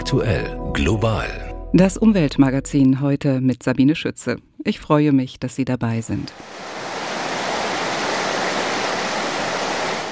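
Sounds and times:
speech: 0.1s - 6.8s
rushing water of a waterfall or strong stream: 6.3s - 10.0s.

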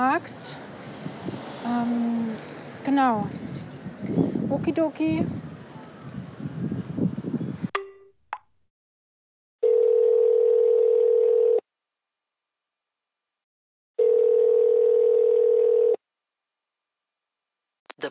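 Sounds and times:
speech: 0.0s - 0.6s, 1.7s - 5.4s
unanswered phone ringback tone: 9.6s - 11.6s, 14.0s - 16.0s.

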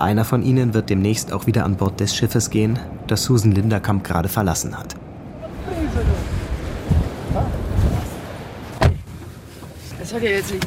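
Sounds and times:
speech: 0.0s - 5.1s, 10.1s - 10.6s
strong wind roaring and buffeting outdoors: 0.0s - 10.6s
heavy rain hissing: 5.3s - 8.8s.

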